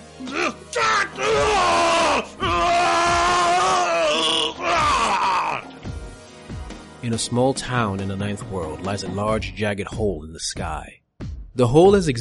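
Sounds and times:
person screaming in anguish: 0.2 - 5.7
speech: 7.1 - 11.0, 11.6 - 12.1.

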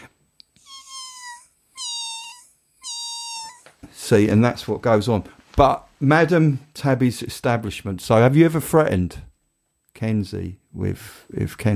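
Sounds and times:
person imitating high cat meows: 0.6 - 3.7
speech: 4.1 - 9.3, 10.0 - 11.7.

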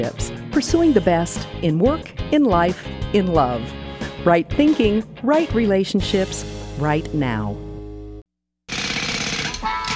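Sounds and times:
speech: 0.0 - 7.7
jackhammer pounding: 8.7 - 9.9.

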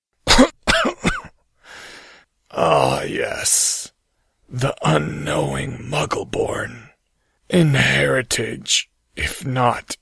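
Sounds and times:
person voiced coughing chuckle: 0.3 - 1.4
soft breathy exhale: 1.6 - 2.3
speech: 2.6 - 3.8, 4.5 - 6.9, 7.5 - 10.0.

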